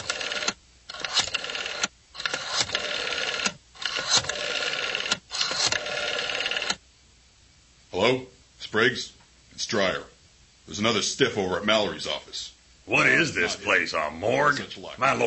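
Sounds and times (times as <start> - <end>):
telephone being dialed with mechanical whirring: 0.0 - 6.8
speech: 8.0 - 10.1, 10.7 - 15.2.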